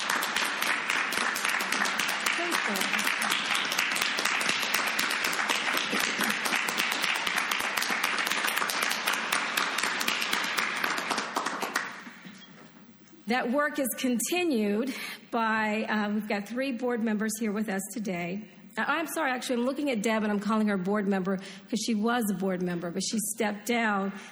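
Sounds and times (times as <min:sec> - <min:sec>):
applause from a large crowd: 0:00.0 - 0:12.1
speech: 0:13.3 - 0:24.3.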